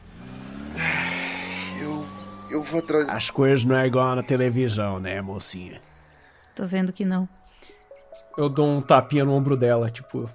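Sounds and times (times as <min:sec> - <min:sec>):
car engine idling and revving as the car drives away: 0:00.0 - 0:06.7
speech: 0:02.5 - 0:05.9, 0:06.6 - 0:07.4, 0:08.4 - 0:10.3.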